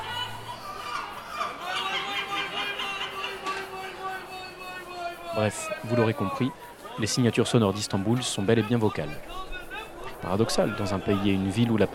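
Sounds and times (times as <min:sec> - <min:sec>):
chorus of seagulls calling in Istanbul: 0:00.0 - 0:03.9
laughter: 0:00.0 - 0:07.0
steady murmur: 0:00.0 - 0:11.9
speech: 0:05.4 - 0:09.5, 0:10.2 - 0:11.9.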